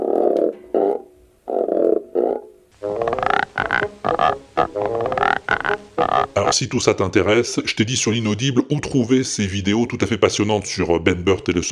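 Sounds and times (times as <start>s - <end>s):
Foley frog-like croaks made by rubbing ropes together: 0.0s - 6.5s
speech: 6.5s - 11.7s.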